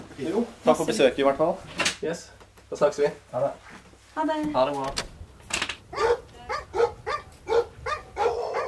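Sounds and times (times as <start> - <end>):
speech: 0.2 - 5.1
large dogs barking deeply: 5.9 - 8.6.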